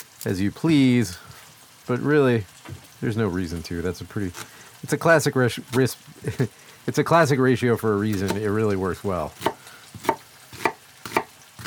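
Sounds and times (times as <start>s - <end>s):
speech: 0.2s - 1.3s, 1.9s - 9.5s
knife dicing a halved peeled onion: 8.1s - 8.5s, 9.4s - 11.6s.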